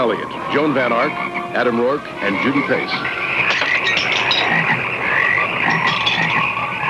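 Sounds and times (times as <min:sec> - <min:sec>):
speech: 0:00.0 - 0:03.2
dense chorus of frogs croaking: 0:00.0 - 0:06.8.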